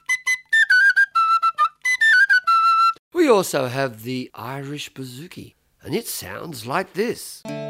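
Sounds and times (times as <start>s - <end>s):
Irish tin whistle playing a lively melody: 0.0s - 3.0s
speech: 3.3s - 7.6s.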